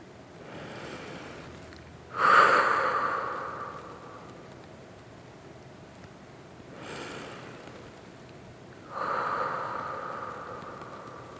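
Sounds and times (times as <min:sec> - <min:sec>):
slow deep breath during a guided breathing moment: 0:00.4 - 0:01.5, 0:02.1 - 0:04.6, 0:06.8 - 0:07.9, 0:08.8 - 0:11.3.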